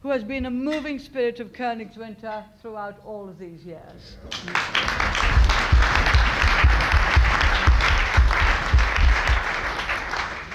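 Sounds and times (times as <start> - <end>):
speech: 0.1 - 6.1
conference audience applauding: 4.3 - 10.5.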